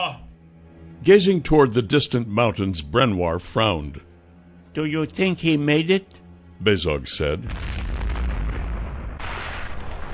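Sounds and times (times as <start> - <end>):
speech: 1.0 - 4.1, 4.8 - 7.8
massive explosion of a floating city: 7.5 - 10.1.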